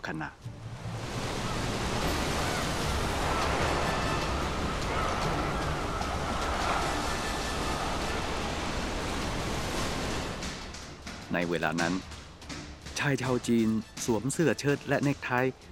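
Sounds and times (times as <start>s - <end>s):
speech: 0.0s - 0.5s, 11.3s - 12.2s, 13.0s - 15.7s
strong wind over the Indian Ocean: 0.5s - 11.1s
rough Indian Ocean waves roaring and tossing a passenger ship: 0.5s - 12.1s.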